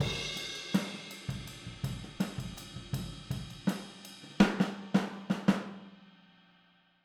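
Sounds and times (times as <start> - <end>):
boogaloo drum kit outro from overhead microphone: 0.0 - 4.7.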